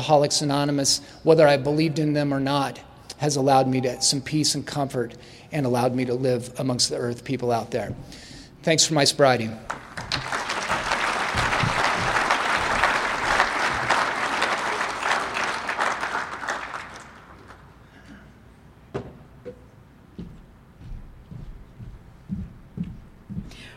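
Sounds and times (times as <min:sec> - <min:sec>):
speech: 0:00.0 - 0:10.4
audience applause: 0:09.7 - 0:17.8.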